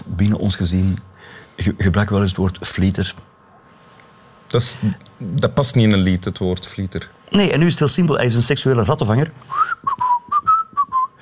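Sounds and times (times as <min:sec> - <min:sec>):
speech: 0:00.2 - 0:03.3, 0:04.5 - 0:10.0
whistled pipe tune: 0:09.5 - 0:11.2.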